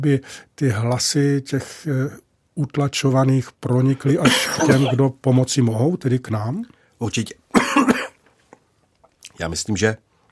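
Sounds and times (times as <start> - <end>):
speech: 0.0 - 7.9, 9.4 - 10.1
person clearing throat: 4.2 - 5.0, 7.6 - 8.2
person coughing: 4.2 - 5.0, 7.6 - 8.2.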